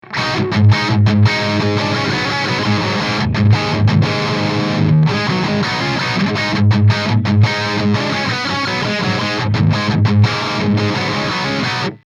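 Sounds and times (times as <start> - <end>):
crunchy electric guitar rhythm slash: 0.0 - 12.0.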